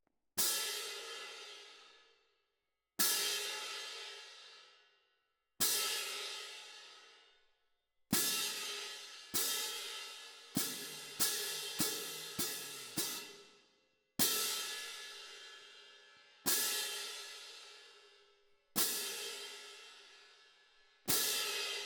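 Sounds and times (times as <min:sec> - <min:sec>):
cymbal: 0:00.4 - 0:02.0, 0:03.0 - 0:04.6, 0:05.6 - 0:07.1, 0:08.2 - 0:13.6, 0:14.2 - 0:18.2, 0:18.8 - 0:21.8.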